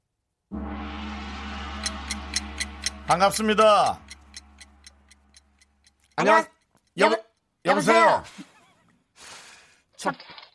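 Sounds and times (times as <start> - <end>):
low constant hum: 0.5 - 6.1
stopwatch ticking: 1.8 - 7.4
speech: 3.1 - 4.1, 6.2 - 8.5, 10.0 - 10.3.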